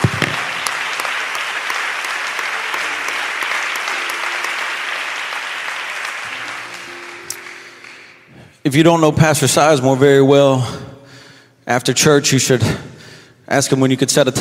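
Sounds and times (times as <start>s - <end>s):
sustained applause from a large congregation: 0.0s - 8.5s
speech: 8.7s - 10.9s, 11.7s - 12.9s, 13.5s - 14.3s.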